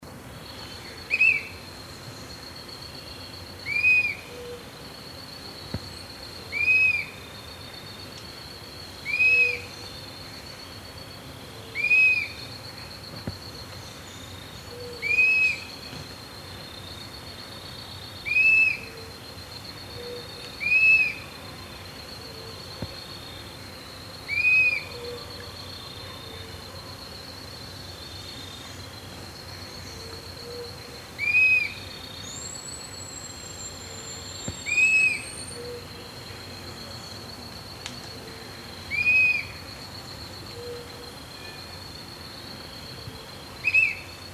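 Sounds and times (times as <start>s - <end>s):
Myiarchus tuberculifer calling: 0.5s - 2.5s, 3.2s - 4.7s, 5.6s - 8.2s, 9.0s - 10.8s, 11.7s - 12.9s, 13.5s - 17.1s, 18.1s - 23.5s, 24.2s - 25.4s, 28.0s - 36.2s, 38.9s - 39.8s, 43.6s - 44.3s.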